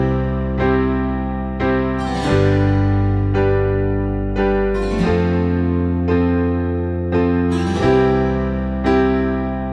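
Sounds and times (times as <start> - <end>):
guitar music ringtone: 0.0 - 9.7.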